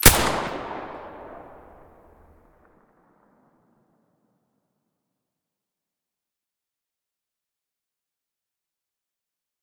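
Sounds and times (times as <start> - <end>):
SV-98 sniper rifle shot with silencer: 0.0 - 2.4.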